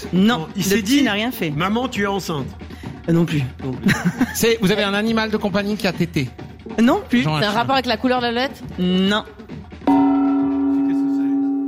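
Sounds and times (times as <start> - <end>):
speech: 0.1 - 9.4
laughter: 3.8 - 4.7
gong struck and ringing with a bright metallic tone: 9.9 - 11.6.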